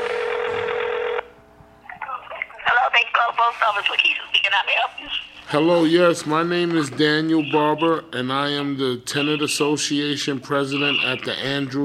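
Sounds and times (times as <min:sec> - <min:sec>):
telephone ringing with electronic trill: 0:00.0 - 0:01.4
speech: 0:03.5 - 0:11.8.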